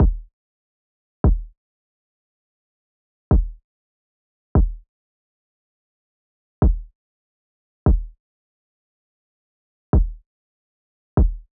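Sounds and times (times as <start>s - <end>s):
145 bpm kick drum in F minor: 0.0s - 0.3s, 1.2s - 1.5s, 3.3s - 3.6s, 4.6s - 4.8s, 6.6s - 6.9s, 7.9s - 8.2s, 10.0s - 10.2s, 11.2s - 11.5s.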